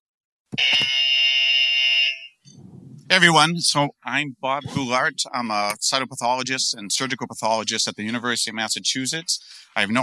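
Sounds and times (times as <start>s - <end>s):
speech: 0.5s - 1.0s, 3.1s - 10.0s
quiz-style buzzer: 0.6s - 2.4s.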